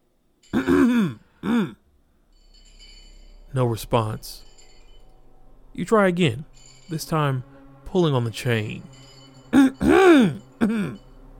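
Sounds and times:
person clearing throat: 0:00.5 - 0:01.8, 0:09.6 - 0:11.0
speech: 0:03.6 - 0:04.5, 0:05.8 - 0:09.1, 0:10.2 - 0:11.0.

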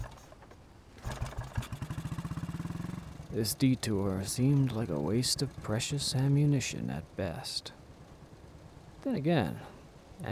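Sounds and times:
motorcycle engine cranking, catching and revving: 0:01.0 - 0:06.8
speech: 0:03.3 - 0:07.8, 0:09.0 - 0:10.3.

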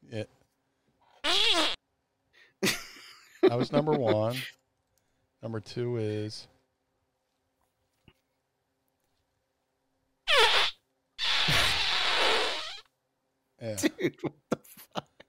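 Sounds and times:
speech: 0:00.1 - 0:00.4, 0:03.5 - 0:04.6, 0:05.4 - 0:06.5, 0:13.6 - 0:14.8
recorded fart: 0:01.2 - 0:01.8, 0:10.3 - 0:12.9
laughter: 0:02.6 - 0:04.5.

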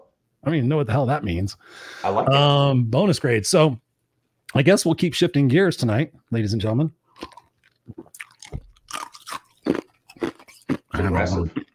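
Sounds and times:
speech: 0:00.4 - 0:03.8, 0:04.5 - 0:08.1, 0:11.1 - 0:11.6
crunchy chewing close to microphone: 0:07.1 - 0:11.0.

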